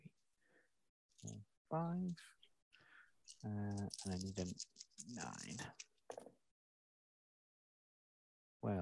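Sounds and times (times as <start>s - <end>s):
five dice being rolled and clattering: 3.3s - 6.3s
person talking: 3.4s - 5.8s.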